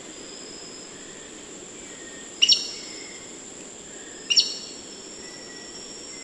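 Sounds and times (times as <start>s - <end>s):
black-necked aracari calling: 0.5s - 6.0s.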